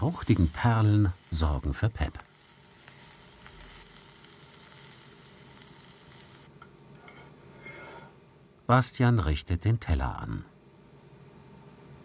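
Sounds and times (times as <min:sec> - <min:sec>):
speech: 0:00.0 - 0:02.3, 0:08.7 - 0:10.5
bacon cubes and fresh grapes sweating in a pan: 0:00.0 - 0:06.5.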